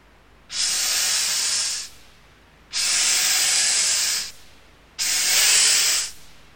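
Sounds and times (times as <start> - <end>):
snake hissing: 0.5 - 2.0, 2.7 - 4.4, 5.0 - 6.2.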